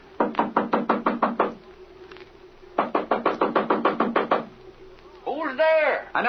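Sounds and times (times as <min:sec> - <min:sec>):
faint hum: 0:00.0 - 0:06.2
rapid firm knocking on a wooden door at night: 0:00.2 - 0:01.6, 0:02.8 - 0:04.5.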